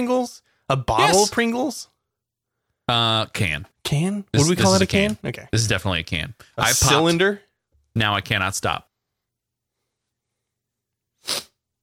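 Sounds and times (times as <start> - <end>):
speech: 0.0 - 1.9, 2.9 - 8.9
person sneezing: 11.2 - 11.6.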